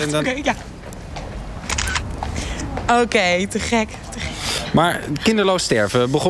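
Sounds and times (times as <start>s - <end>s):
speech: 0.0s - 0.8s, 2.8s - 6.2s
steady noise: 0.0s - 6.2s
mobile phone camera shutter click: 1.7s - 2.1s.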